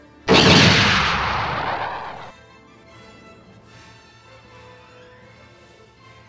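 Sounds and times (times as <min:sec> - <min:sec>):
loud gunshot with sharp explosive crack and rumble: 0:00.3 - 0:02.3.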